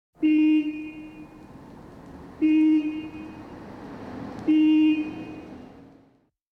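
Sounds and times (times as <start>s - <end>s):
electric bus horn: 0.2s - 1.4s, 2.4s - 3.4s, 4.5s - 5.6s.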